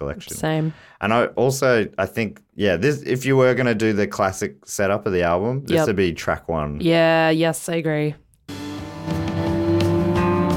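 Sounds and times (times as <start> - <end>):
speech: 0.0 - 8.2
distorted electric guitar imitating a revving car: 8.5 - 10.5.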